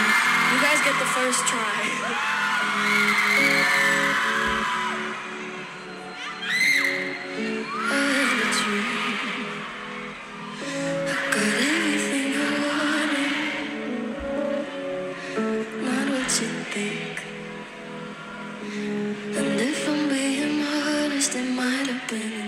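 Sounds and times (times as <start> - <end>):
dense festival crowd screaming and whooping: 0.0 - 22.4
speech: 0.9 - 4.9.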